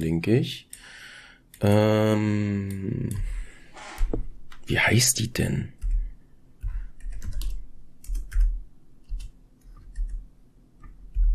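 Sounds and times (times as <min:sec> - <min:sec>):
speech: 0:00.0 - 0:01.0, 0:01.6 - 0:03.4, 0:04.1 - 0:05.8
typing on a computer keyboard: 0:05.8 - 0:06.0, 0:06.6 - 0:10.2, 0:10.8 - 0:11.3.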